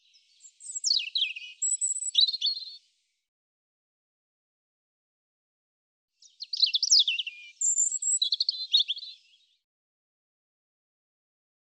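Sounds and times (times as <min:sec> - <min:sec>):
European robin song: 0:00.0 - 0:02.9, 0:06.2 - 0:09.6.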